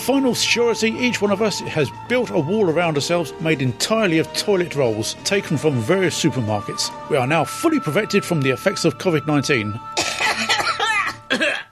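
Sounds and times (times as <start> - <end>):
speech: 0.0 - 10.2
person coughing: 10.0 - 11.7.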